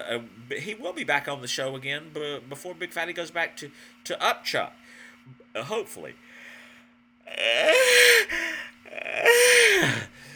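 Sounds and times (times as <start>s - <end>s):
speech: 0.0s - 6.3s, 7.3s - 8.4s
person yawning: 7.3s - 10.1s.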